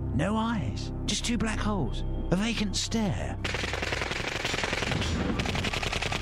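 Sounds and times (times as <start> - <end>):
speech: 0.2 - 3.8, 5.2 - 5.6
Uzi submachine gun firing automatic bursts: 3.4 - 6.2.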